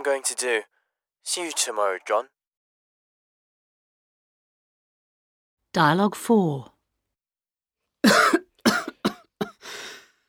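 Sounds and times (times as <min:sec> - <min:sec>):
speech: 0:00.0 - 0:02.4, 0:05.8 - 0:06.7
harsh coughing: 0:08.0 - 0:09.9
rough raspy exhale: 0:09.6 - 0:10.2.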